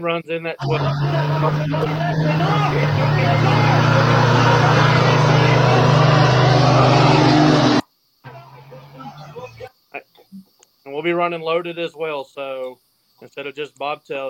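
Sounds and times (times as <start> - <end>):
speech: 0.0 - 6.0, 11.0 - 14.2
crowd noise: 0.6 - 9.6
truck engine roaring down drag strip: 0.6 - 9.6.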